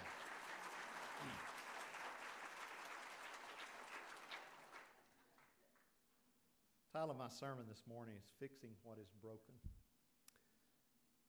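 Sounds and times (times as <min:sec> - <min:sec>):
audience applauding at a church service: 0:00.0 - 0:05.8
speech: 0:06.9 - 0:09.8.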